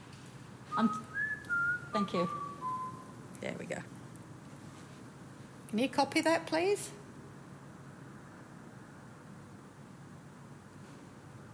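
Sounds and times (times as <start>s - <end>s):
person whistling a short tune: 0.7s - 3.1s
speech: 0.8s - 1.1s, 2.0s - 2.4s, 3.4s - 4.0s, 5.7s - 7.0s.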